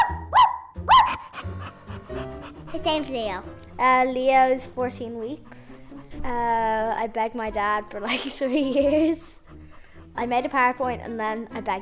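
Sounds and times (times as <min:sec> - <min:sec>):
cockapoo puppy giving sharp high-pitched barks: 0:00.0 - 0:01.8
speech: 0:02.7 - 0:05.6, 0:06.2 - 0:09.4, 0:10.2 - 0:11.8
laughter: 0:08.0 - 0:09.2.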